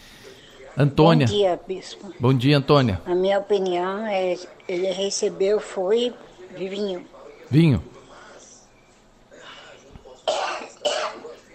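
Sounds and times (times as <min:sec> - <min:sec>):
faint murmuring in a quiet room: 0:00.0 - 0:11.5
speech: 0:00.8 - 0:07.9
harsh raspy coughs: 0:10.2 - 0:11.4.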